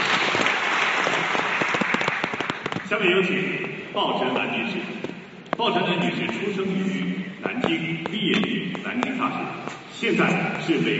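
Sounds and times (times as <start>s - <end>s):
audience applause after a speech at a formal event: 0.0s - 2.9s
speech: 2.9s - 10.9s.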